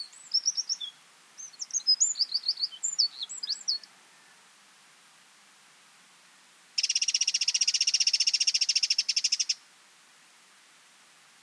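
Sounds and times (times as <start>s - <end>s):
Eurasian wren Troglodytes troglodytes rattle of high harsh notes: 6.8s - 9.6s.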